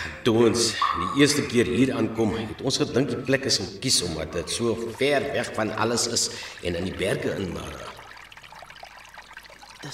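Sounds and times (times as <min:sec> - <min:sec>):
speech: 0:00.2 - 0:08.0
water from an underground lake trickling through rock: 0:04.0 - 0:09.9.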